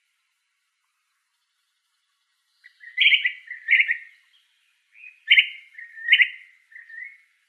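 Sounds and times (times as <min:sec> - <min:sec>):
brown-crested flycatcher giving burry harsh calls in Arizona: 0:02.6 - 0:07.3.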